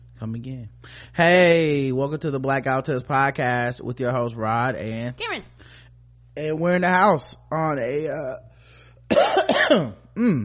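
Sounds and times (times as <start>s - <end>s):
speech: 0.2s - 5.5s, 6.4s - 8.5s, 9.1s - 10.4s
person coughing after something went down the wrong way: 9.1s - 10.4s.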